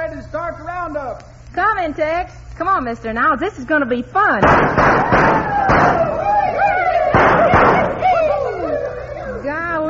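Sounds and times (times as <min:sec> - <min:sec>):
speech: 0:00.9 - 0:06.2
gunshots: 0:04.4 - 0:06.3, 0:07.1 - 0:08.0
people whooping and yelping: 0:04.8 - 0:09.8.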